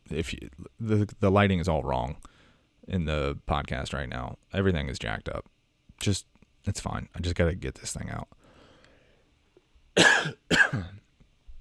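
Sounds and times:
speech: 0:00.1 - 0:02.3, 0:02.9 - 0:08.4, 0:10.0 - 0:11.0
loud harsh coughs: 0:10.0 - 0:11.0.

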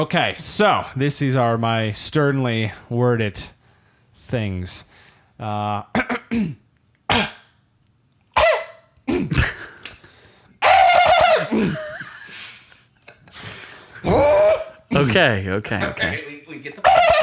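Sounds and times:
speech: 0:00.0 - 0:03.6, 0:04.3 - 0:07.3, 0:11.6 - 0:11.8, 0:14.9 - 0:16.9
person clearing throat with raspy hacks and coughing: 0:05.9 - 0:07.5, 0:08.4 - 0:09.8, 0:11.3 - 0:12.1, 0:14.0 - 0:15.0.

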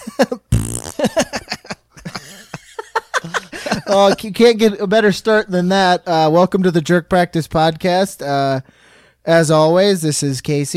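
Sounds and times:
people chuckling: 0:00.0 - 0:04.2
speech: 0:00.2 - 0:00.5, 0:03.9 - 0:10.7
vocal noises: 0:00.5 - 0:01.0
loud buzzy fart: 0:00.5 - 0:01.2.

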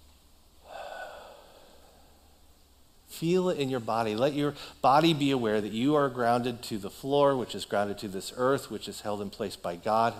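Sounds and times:
single slow deep breath: 0:00.6 - 0:02.6, 0:04.5 - 0:04.8
speech: 0:03.2 - 0:10.1.

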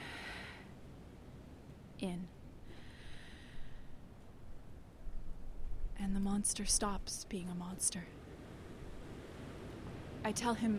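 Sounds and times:
speech: 0:02.0 - 0:02.4, 0:06.0 - 0:08.2, 0:10.2 - 0:10.7
soft airy breath out: 0:02.7 - 0:04.0.

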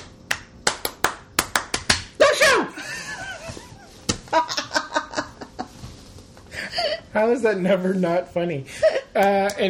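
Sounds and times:
sharp hand claps: 0:00.0 - 0:02.2, 0:09.2 - 0:09.6
burst of laughter: 0:02.7 - 0:05.8
speech: 0:07.2 - 0:09.6.

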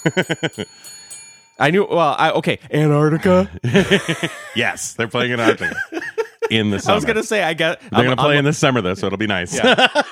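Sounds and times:
laughter: 0:00.0 - 0:00.7, 0:03.1 - 0:10.0
speech: 0:00.0 - 0:01.0, 0:01.6 - 0:10.0
voice imitating a ringing bell with ding sounds: 0:00.0 - 0:01.9.

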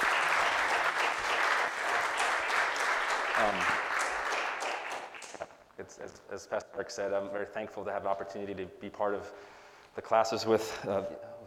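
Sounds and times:
audience applauding: 0:00.0 - 0:05.5
speech: 0:03.4 - 0:03.8, 0:05.9 - 0:11.3.

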